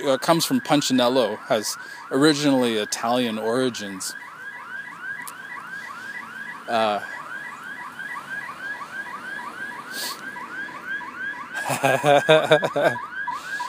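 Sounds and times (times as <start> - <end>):
speech: 0.0 - 4.3, 6.7 - 7.1, 11.7 - 13.1
electronic security alarm with rapid repeating chirping whoop: 0.0 - 13.6
laughter: 11.6 - 13.0.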